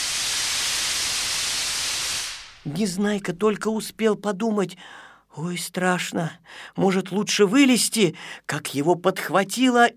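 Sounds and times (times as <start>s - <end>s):
air hissing out of an inflated balloon through an opened valve: 0.0s - 2.6s
speech: 2.6s - 9.9s.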